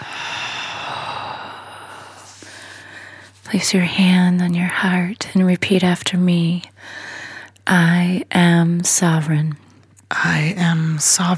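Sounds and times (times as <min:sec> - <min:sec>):
long exhale after a held breath during a breathing exercise: 0:00.0 - 0:03.0
speech: 0:03.5 - 0:07.1, 0:07.7 - 0:11.3.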